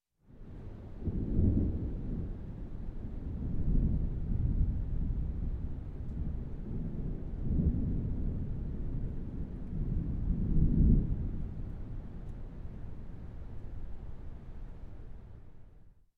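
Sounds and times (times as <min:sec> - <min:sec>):
distant thunder rumbling: 0:00.9 - 0:13.6.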